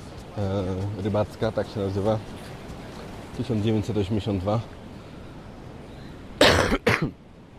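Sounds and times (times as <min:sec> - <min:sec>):
speech: 0:00.4 - 0:02.5, 0:03.4 - 0:04.8, 0:07.0 - 0:07.2
harsh coughs: 0:06.4 - 0:07.2.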